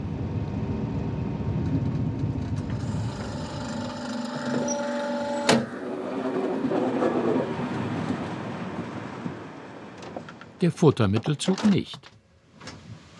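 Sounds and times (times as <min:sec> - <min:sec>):
train arriving at station rumbling: 0:00.0 - 0:12.0
train brakes squealing: 0:02.6 - 0:10.6
speech: 0:10.6 - 0:12.2.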